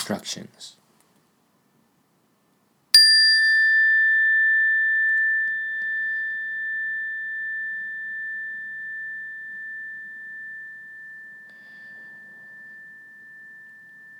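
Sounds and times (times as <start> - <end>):
speech: 0.1 - 0.8
meditation bell ringing: 3.0 - 14.1.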